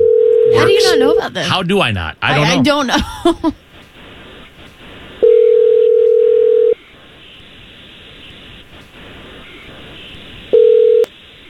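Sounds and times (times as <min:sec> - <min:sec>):
telephone line dial tone: 0:00.0 - 0:00.5, 0:05.2 - 0:06.8, 0:10.6 - 0:11.1
low telephone line noise: 0:00.0 - 0:11.4
laughter: 0:00.5 - 0:03.6
speech: 0:00.6 - 0:03.6.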